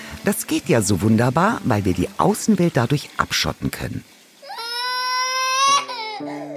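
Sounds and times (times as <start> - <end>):
speech: 0.2 - 4.1, 6.2 - 6.5
child whining and crying: 4.4 - 6.5.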